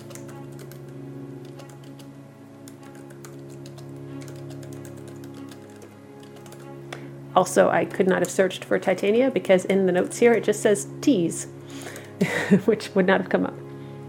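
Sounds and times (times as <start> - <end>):
typing on a computer keyboard: 0.0 - 2.1, 2.7 - 6.8
speech: 7.4 - 11.9, 12.5 - 13.6.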